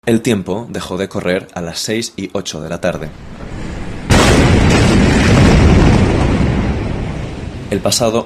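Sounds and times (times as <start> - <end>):
speech: 0.0 - 3.7, 7.7 - 8.2
low rumble: 2.9 - 7.9
huge explosion at a port: 2.9 - 8.2.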